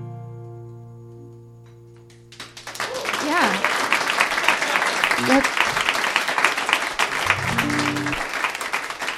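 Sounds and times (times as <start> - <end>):
dense steady audience applause after a sad song: 2.3 - 9.1
brief vocal whoop or hum from the audience: 2.8 - 3.4.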